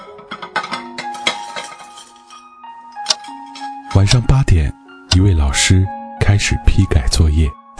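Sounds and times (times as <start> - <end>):
dishes and cutlery clattering as they are cleared: 0.0 - 3.9
speech: 4.0 - 7.6.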